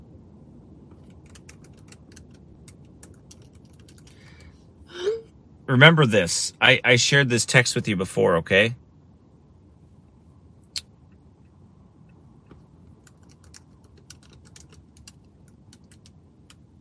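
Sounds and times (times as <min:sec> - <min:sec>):
steady low hum: 0:00.0 - 0:16.8
keyboard typing: 0:01.0 - 0:04.2, 0:13.0 - 0:16.6
speech: 0:05.7 - 0:08.8.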